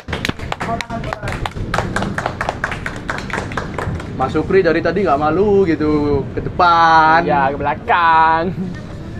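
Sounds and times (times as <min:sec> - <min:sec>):
group applauding young people who received nominations: 0:00.0 - 0:04.3
speech: 0:00.7 - 0:01.3, 0:04.2 - 0:08.8.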